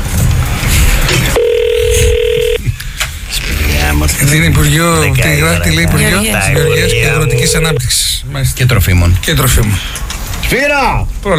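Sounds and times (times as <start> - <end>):
noisy background: 0.0 - 11.3
telephone ringing with a steady electronic tone: 1.4 - 2.6, 6.1 - 7.8
speech: 4.3 - 11.3.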